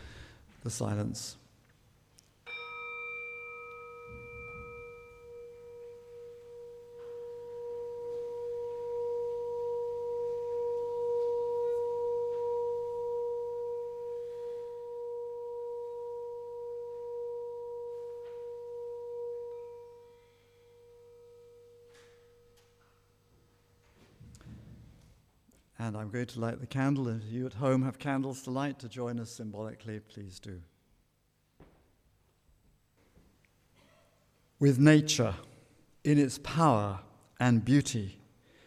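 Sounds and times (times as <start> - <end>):
speech: 0.6 - 1.4, 26.0 - 30.7, 34.6 - 38.2
singing bowl struck and ringing: 2.4 - 23.7.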